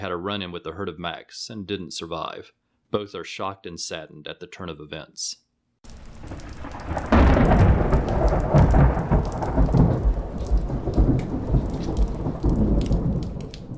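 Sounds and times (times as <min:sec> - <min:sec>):
speech: 0:00.0 - 0:07.0
steady falling rain: 0:05.8 - 0:13.7
deep thunder rolling: 0:05.9 - 0:13.7.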